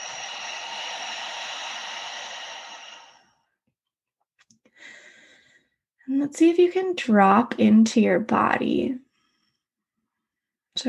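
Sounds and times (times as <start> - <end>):
deep breath in through the nose and out through the mouth: 0.0 - 3.6, 4.7 - 5.9, 9.0 - 9.8
speech: 6.2 - 9.0.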